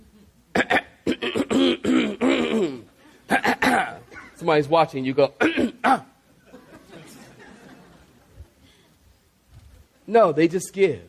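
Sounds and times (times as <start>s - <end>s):
person imitating throat clearing during a church sermon: 0.5s - 4.4s, 5.4s - 6.2s
speech: 4.5s - 6.1s, 10.1s - 11.0s
laughter: 6.3s - 8.6s.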